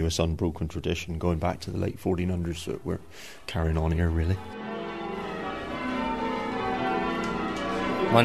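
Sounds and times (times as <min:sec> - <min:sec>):
speech: 0:00.0 - 0:04.6, 0:08.1 - 0:08.2
church bells of St. Michael the Archangel in Chagford England ringing a peal: 0:03.9 - 0:08.2.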